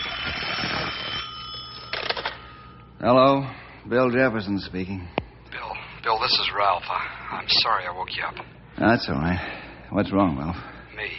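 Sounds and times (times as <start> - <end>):
telephone ringing: 0.0 - 2.9
speech: 3.0 - 5.2, 6.2 - 11.1.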